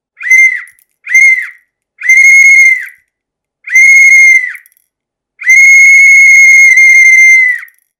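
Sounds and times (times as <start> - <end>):
whistle blowing: 0.2 - 3.0, 3.7 - 4.7, 5.4 - 7.8.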